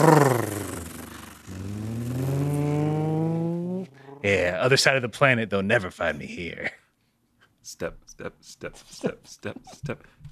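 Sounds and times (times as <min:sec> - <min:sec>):
car engine revving as the vehicle accelerates away: 0:00.0 - 0:04.5
speech: 0:04.2 - 0:06.8, 0:07.7 - 0:10.3.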